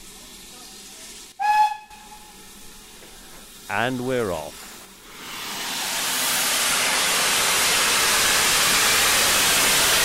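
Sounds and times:
steam locomotive hissing at a station while waiting to depart: 0:00.0 - 0:10.0
steam locomotive whistle: 0:01.4 - 0:02.4
speech: 0:03.7 - 0:04.6.

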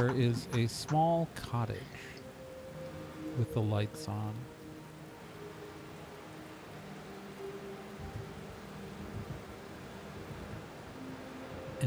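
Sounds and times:
speech: 0:00.0 - 0:02.1, 0:03.4 - 0:04.6
laughter: 0:00.0 - 0:02.2
steady rain falling: 0:00.0 - 0:11.8.

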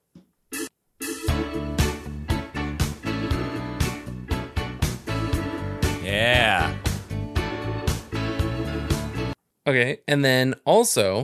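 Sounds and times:
soft rock song: 0:01.3 - 0:09.4
speech: 0:09.7 - 0:11.2.

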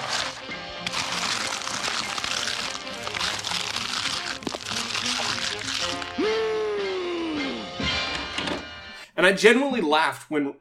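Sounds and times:
exaggerated cartoon crunching and chewing of cat litter: 0:00.0 - 0:06.2
vocal sounds: 0:00.0 - 0:07.8
speech: 0:09.2 - 0:10.5.

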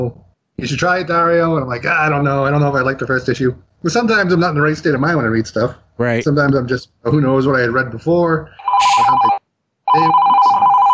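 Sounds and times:
speech: 0:00.0 - 0:09.4, 0:10.0 - 0:10.6
telephone ringing with electronic trilling tone: 0:08.6 - 0:10.9.

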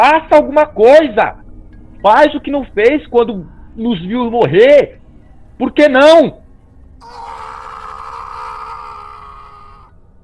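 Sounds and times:
speech: 0:00.0 - 0:01.4, 0:02.0 - 0:05.0, 0:05.6 - 0:06.4, 0:07.0 - 0:07.4
person screaming in despair: 0:07.0 - 0:09.9.

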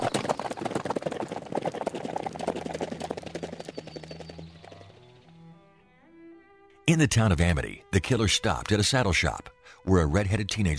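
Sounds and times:
horses' hooves clip-clopping over hard ground: 0:00.0 - 0:05.4
speech: 0:06.9 - 0:10.7.

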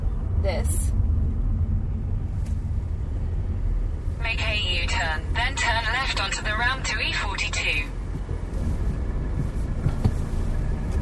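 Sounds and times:
heavy road traffic rumbling with many large trucks: 0:00.0 - 0:10.9
speech: 0:00.4 - 0:01.1, 0:05.0 - 0:08.0.

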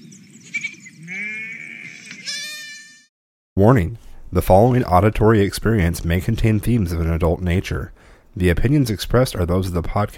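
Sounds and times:
single sheep bleating: 0:01.0 - 0:03.0
speech: 0:03.6 - 0:10.1.

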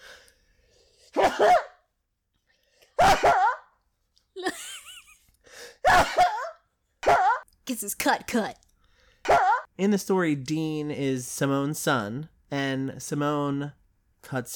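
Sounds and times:
loud sneezes: 0:01.1 - 0:01.9, 0:03.0 - 0:03.7, 0:05.8 - 0:07.4, 0:09.2 - 0:09.7
speech: 0:01.3 - 0:01.7, 0:07.8 - 0:08.6, 0:09.8 - 0:14.5.

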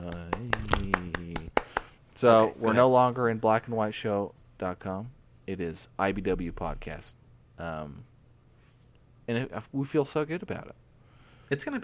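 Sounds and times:
hands clapping: 0:00.0 - 0:02.0
speech: 0:02.2 - 0:08.1, 0:09.3 - 0:10.8, 0:11.5 - 0:11.8.

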